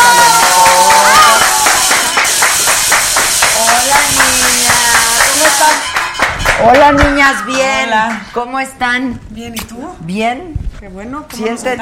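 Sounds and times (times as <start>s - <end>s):
studio audience applause: 0.0s - 7.4s
speech: 6.9s - 11.8s.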